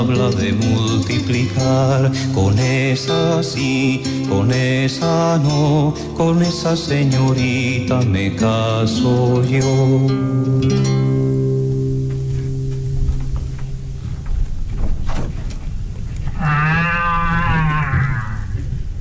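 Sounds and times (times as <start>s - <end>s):
speech: 0.0s - 11.1s
continuous rustling: 11.6s - 19.0s
cow mooing: 16.3s - 18.6s.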